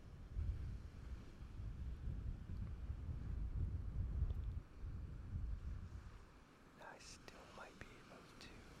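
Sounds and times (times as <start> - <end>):
heavy wind buffeting the microphone: 0.0 - 6.3.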